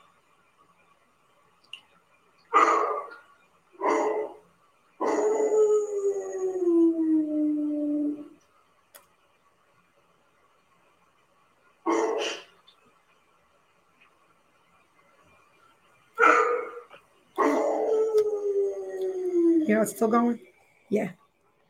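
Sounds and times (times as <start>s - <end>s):
dog barking: 2.5s - 3.2s, 3.8s - 4.4s, 11.9s - 12.5s, 16.2s - 17.8s
dog howling with long wavering howls: 5.0s - 8.4s, 16.2s - 19.8s
speech: 19.8s - 21.2s.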